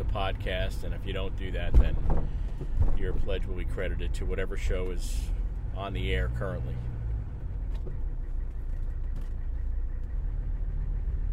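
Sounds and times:
heavy low rumble of road traffic getting on to a tunnel extension: 0:00.0 - 0:11.3
speech: 0:00.1 - 0:07.0.

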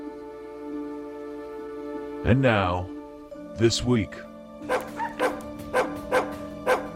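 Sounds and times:
speech: 0:02.2 - 0:03.0, 0:03.6 - 0:04.3
dogs barking: 0:04.6 - 0:06.9.

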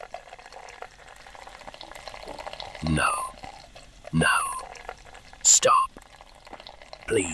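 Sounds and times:
stout fizzing and gurgling as poured into a pint glass: 0:00.0 - 0:07.3
speech: 0:02.8 - 0:03.2, 0:04.1 - 0:04.4, 0:07.1 - 0:07.3.

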